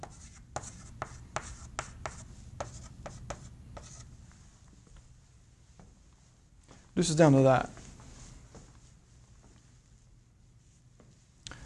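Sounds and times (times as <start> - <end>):
handwriting scratching during a lecture: 0.0 - 4.1
speech: 7.0 - 7.8.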